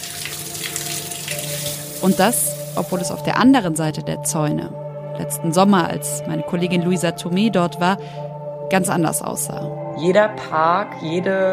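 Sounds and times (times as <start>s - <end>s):
water pouring into a garden pool in Kronberg: 0.0s - 2.9s
speech: 2.0s - 11.5s.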